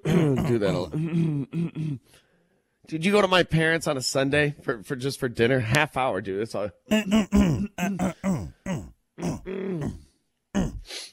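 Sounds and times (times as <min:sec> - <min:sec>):
man grunting in short guttural bursts: 0:00.0 - 0:01.9, 0:06.9 - 0:10.9
speech: 0:00.2 - 0:02.2, 0:02.9 - 0:10.0.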